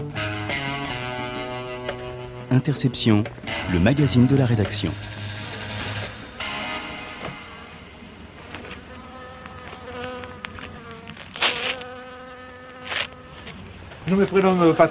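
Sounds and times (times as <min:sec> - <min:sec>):
honeybees buzzing at beekeeper's hives in a village in the Gers, France: 0:00.0 - 0:14.9
speech: 0:02.5 - 0:05.2, 0:14.1 - 0:14.9.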